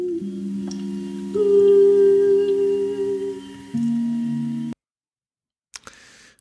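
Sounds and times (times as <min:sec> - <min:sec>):
person singing underwater with an air bubble in the mouth: 0:00.0 - 0:04.7.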